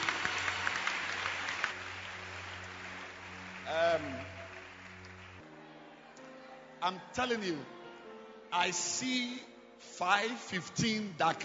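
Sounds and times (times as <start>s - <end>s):
audience clapping hands: 0.0s - 5.5s
speech: 6.8s - 7.8s, 8.5s - 11.4s.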